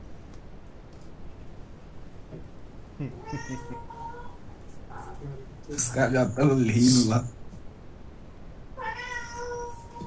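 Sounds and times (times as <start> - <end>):
laughter: 3.0 - 3.8
speech: 3.0 - 4.0, 5.2 - 7.4
cat meowing: 3.2 - 5.5, 8.8 - 10.0.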